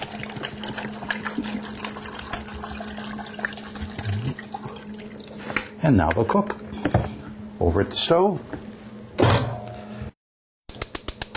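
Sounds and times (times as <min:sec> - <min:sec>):
apple juice poured into a pot: 0:00.0 - 0:05.4
speech: 0:05.8 - 0:08.6.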